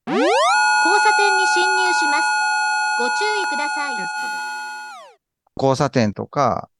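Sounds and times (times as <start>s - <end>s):
dissonant special ambulance electronic siren: 0.0s - 5.2s
speech: 3.1s - 4.5s, 5.6s - 6.7s.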